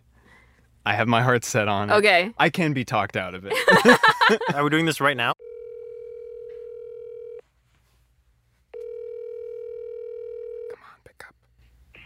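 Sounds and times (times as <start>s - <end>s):
speech: 0.8s - 5.4s
laughter: 3.5s - 4.9s
ringback tone of an outgoing call to a cell phone: 5.4s - 7.4s, 8.8s - 10.7s.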